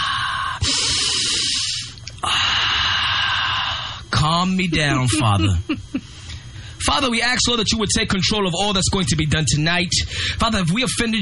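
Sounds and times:
deep inhaling and exhaling during a spoken prayer: 0:00.0 - 0:04.1, 0:10.0 - 0:10.4
speech: 0:04.4 - 0:06.1, 0:06.8 - 0:11.1
laughter: 0:04.7 - 0:06.0.

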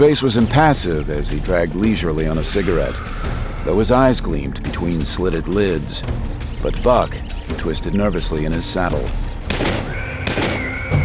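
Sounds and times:
speech: 0:00.0 - 0:09.7
gunshots inside a building: 0:09.5 - 0:10.6.

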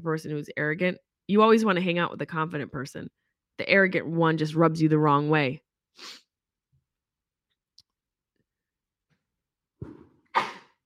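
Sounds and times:
speech: 0:00.0 - 0:06.2
person sneezing: 0:09.8 - 0:10.8.

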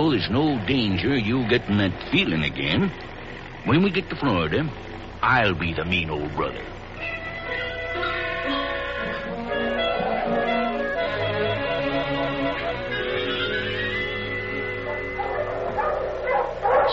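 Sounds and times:
speech: 0:00.0 - 0:06.8
pack of sled dogs barking and yipping: 0:07.6 - 0:16.9.

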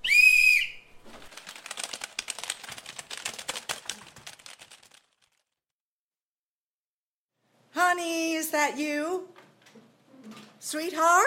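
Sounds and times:
loud shrill whistle blast: 0:00.0 - 0:00.9
many computer keyboards being typed on: 0:01.3 - 0:05.4
speech: 0:08.0 - 0:09.4, 0:10.6 - 0:11.2.

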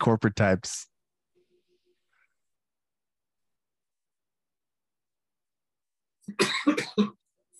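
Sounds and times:
speech: 0:00.0 - 0:00.9, 0:06.3 - 0:07.2
man coughing: 0:06.3 - 0:07.2.

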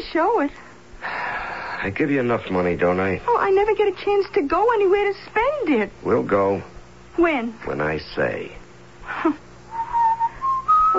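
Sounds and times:
speech: 0:00.0 - 0:00.7, 0:01.8 - 0:08.6, 0:09.2 - 0:09.4
faint low hum: 0:00.0 - 0:10.9
person whistling a song: 0:09.7 - 0:10.9.

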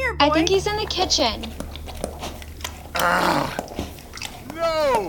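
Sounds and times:
speech: 0:00.2 - 0:01.6, 0:03.0 - 0:03.6
dog in a kitchen chewing and gnawing on a stolen turkey: 0:01.4 - 0:05.0
dog growling: 0:02.0 - 0:05.0.

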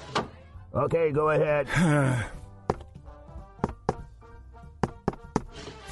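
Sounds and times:
speech: 0:00.8 - 0:02.4
sharp knocks on a wooden door: 0:03.6 - 0:04.1, 0:04.8 - 0:05.5.

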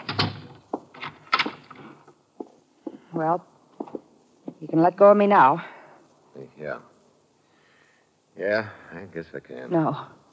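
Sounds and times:
sharp thump of a door: 0:00.0 - 0:01.7
door being pulled and rattled: 0:00.0 - 0:02.0
clattering knocks of a door: 0:00.0 - 0:03.1
speech: 0:03.2 - 0:03.5, 0:04.6 - 0:05.7, 0:06.4 - 0:06.9, 0:08.4 - 0:10.2.

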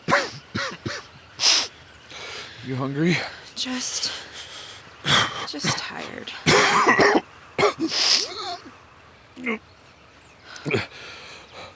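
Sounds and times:
person coughing: 0:00.1 - 0:01.1, 0:06.4 - 0:08.6
strained throaty breaths: 0:01.3 - 0:05.6, 0:07.8 - 0:08.7, 0:10.4 - 0:11.7
speech: 0:02.7 - 0:04.3, 0:05.0 - 0:07.2, 0:07.8 - 0:08.8, 0:09.4 - 0:09.7, 0:10.6 - 0:10.9.

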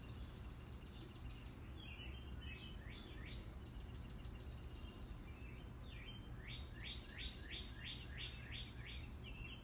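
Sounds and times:
birds singing at night in June: 0:00.0 - 0:09.6.

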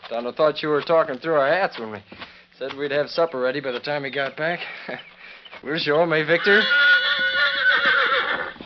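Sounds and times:
speech: 0:00.1 - 0:07.2
horse neighing: 0:06.2 - 0:08.6.

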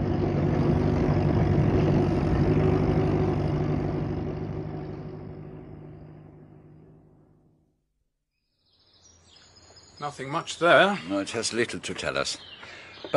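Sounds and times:
car engine rumbling as car parks at a lodge: 0:00.0 - 0:07.7
speech: 0:10.0 - 0:13.1.

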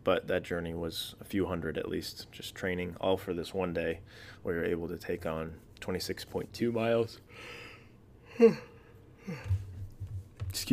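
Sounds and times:
speech: 0:00.0 - 0:07.6, 0:08.4 - 0:08.7, 0:09.3 - 0:09.7, 0:10.5 - 0:10.7
tired parent yawning while lying down for nap time: 0:08.3 - 0:09.6.

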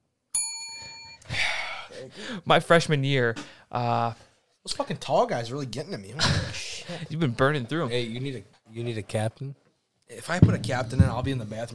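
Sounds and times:
bell ding: 0:00.4 - 0:01.3
speech: 0:01.9 - 0:11.7.

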